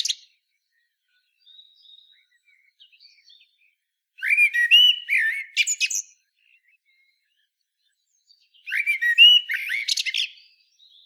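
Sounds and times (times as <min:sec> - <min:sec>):
Common blackbird Turdus merula singing mellow fluted whistles and a squeaky twitter: 0:04.2 - 0:06.1, 0:08.6 - 0:10.4.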